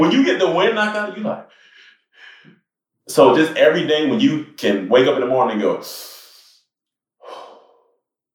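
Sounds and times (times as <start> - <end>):
speech: 0.0 - 1.6, 2.4 - 6.1
person taking a deep breath in and out: 1.4 - 2.5, 7.2 - 8.0.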